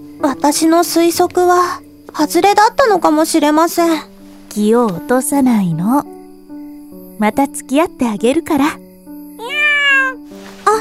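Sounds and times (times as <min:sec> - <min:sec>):
speech: 0:00.2 - 0:06.2, 0:07.2 - 0:08.8
cat meowing: 0:09.4 - 0:10.3.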